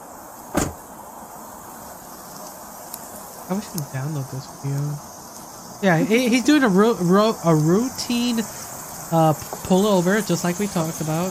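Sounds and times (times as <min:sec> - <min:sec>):
police car door thud during a traffic stop: 0:00.5 - 0:00.8
speech: 0:03.5 - 0:05.1, 0:05.8 - 0:11.2.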